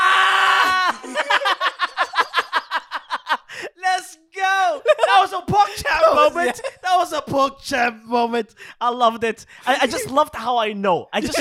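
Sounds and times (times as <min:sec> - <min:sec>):
several people screaming together: 0:00.0 - 0:01.2
laughter: 0:00.8 - 0:03.8, 0:04.7 - 0:07.0, 0:11.2 - 0:11.4
speech: 0:06.4 - 0:11.4.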